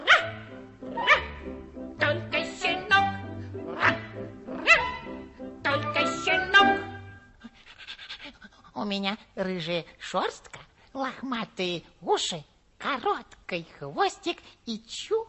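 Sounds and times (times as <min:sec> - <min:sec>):
puppy yipping and barking: 0:00.0 - 0:01.4, 0:03.8 - 0:05.0
steady low musical notes: 0:00.0 - 0:07.3
speech: 0:08.8 - 0:15.2.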